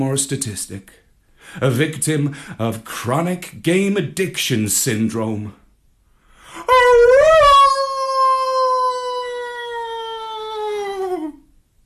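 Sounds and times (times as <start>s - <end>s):
speech: 0.0s - 5.6s
human voice imitating a dog howling: 6.6s - 11.5s.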